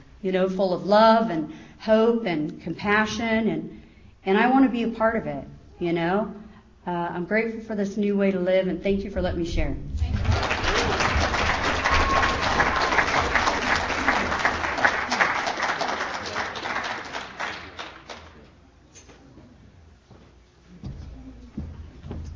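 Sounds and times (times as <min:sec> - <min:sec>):
speech: 0:00.2 - 0:09.9
crowd applauding: 0:10.0 - 0:18.4.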